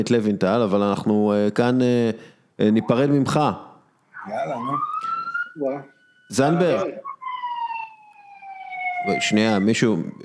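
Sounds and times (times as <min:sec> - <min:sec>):
speech: 0:00.0 - 0:07.1, 0:09.0 - 0:10.2
ambulance siren wailing: 0:04.1 - 0:10.2.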